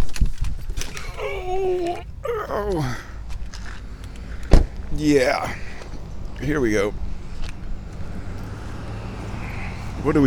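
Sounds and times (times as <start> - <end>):
road traffic rumble: 0.7 - 10.2
speech: 2.6 - 3.1, 5.0 - 5.6, 6.4 - 7.0, 10.0 - 10.2
vehicles swishing past: 3.2 - 10.2.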